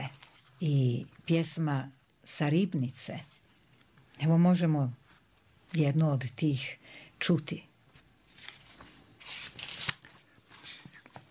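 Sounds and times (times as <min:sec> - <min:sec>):
book pages being leafed through: 0:00.0 - 0:00.6, 0:08.0 - 0:11.3
speech: 0:00.6 - 0:03.3, 0:04.2 - 0:05.0, 0:05.7 - 0:07.7.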